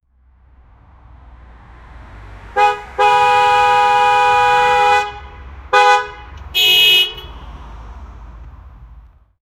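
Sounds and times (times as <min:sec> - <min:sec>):
car horn passing fast: 0:02.4 - 0:08.0.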